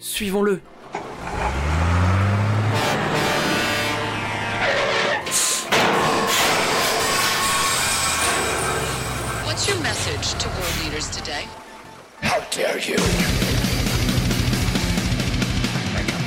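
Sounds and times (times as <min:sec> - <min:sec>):
speech: 0:00.0 - 0:01.6, 0:09.6 - 0:13.6
dense traffic-like noise: 0:00.0 - 0:15.2
garbage truck engine revving and shifting gears pulling away: 0:00.6 - 0:16.2
garbage truck air brakes hissing: 0:05.0 - 0:09.7, 0:10.4 - 0:11.2.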